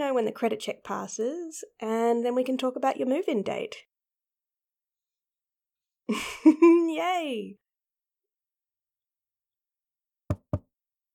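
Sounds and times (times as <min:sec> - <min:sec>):
speech: 0:00.0 - 0:03.9, 0:06.1 - 0:07.6
knocking on an open wooden door: 0:10.3 - 0:10.7.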